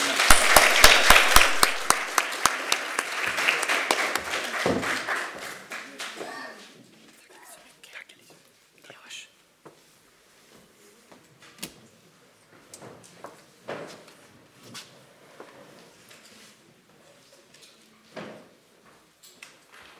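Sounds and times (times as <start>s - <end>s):
room full of people applauding: 0.0s - 6.4s.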